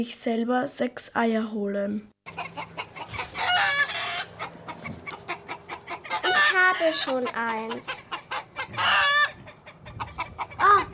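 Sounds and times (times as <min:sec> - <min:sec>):
speech: 0:00.0 - 0:02.5, 0:06.8 - 0:08.1
chickens clucking in a farmer's henhouse: 0:02.3 - 0:10.9.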